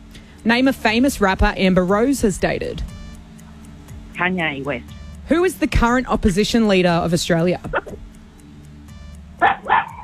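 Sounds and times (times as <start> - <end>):
low hum: 0.0 - 10.0
speech: 0.4 - 2.9, 4.2 - 8.1
dog barking: 9.4 - 10.0.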